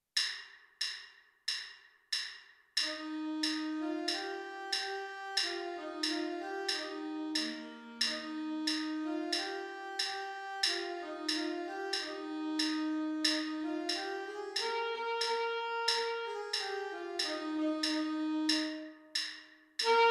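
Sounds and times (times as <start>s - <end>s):
alto saxophone melody: 2.8s - 19.2s, 19.8s - 20.0s.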